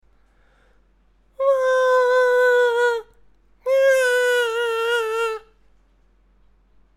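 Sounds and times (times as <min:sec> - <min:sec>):
man crying: 0:01.4 - 0:03.0, 0:03.7 - 0:05.5.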